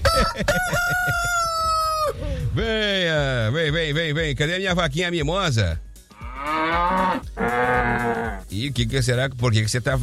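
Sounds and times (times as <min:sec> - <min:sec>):
rooster crowing: 0:00.0 - 0:02.1
speech: 0:02.6 - 0:10.0.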